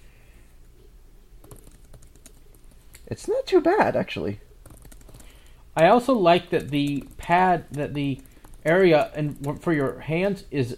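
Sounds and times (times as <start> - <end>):
low steady hum: 0.0 - 10.7
typing on a laptop keyboard: 1.4 - 2.7, 4.6 - 5.6, 6.3 - 10.0
speech: 3.1 - 4.4, 5.8 - 10.7.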